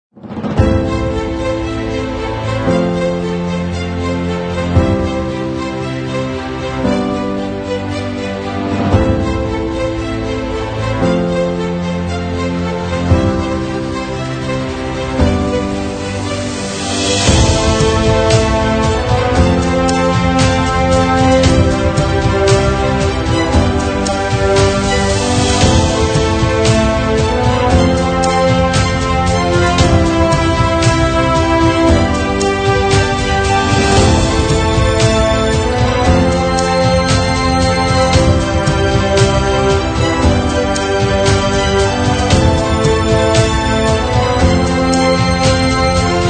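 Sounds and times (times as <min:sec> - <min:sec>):
epic victory music: 0:00.1 - 0:46.2.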